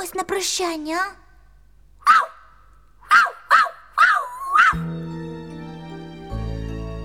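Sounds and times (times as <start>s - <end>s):
speech: 0.3s - 1.2s
dog barking: 2.1s - 2.5s, 3.1s - 4.8s
soft music: 4.8s - 7.0s.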